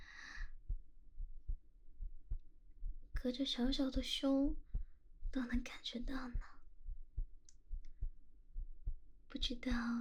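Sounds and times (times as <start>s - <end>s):
heartbeat thumping in a lub-dub rhythm: 0.4s - 9.9s
speech: 3.2s - 4.7s, 5.3s - 6.6s, 9.4s - 9.9s.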